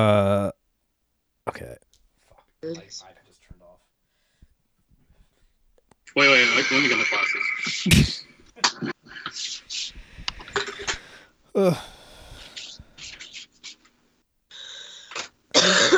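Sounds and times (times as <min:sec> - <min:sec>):
speech: 0:00.0 - 0:00.2, 0:02.6 - 0:03.2, 0:06.1 - 0:09.5, 0:11.6 - 0:11.9
person coughing into elbow: 0:00.0 - 0:00.5, 0:07.9 - 0:08.1.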